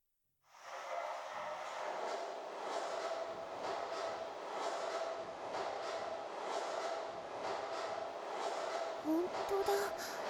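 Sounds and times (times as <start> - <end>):
train rumbling by at a distance: 0.5 - 10.2.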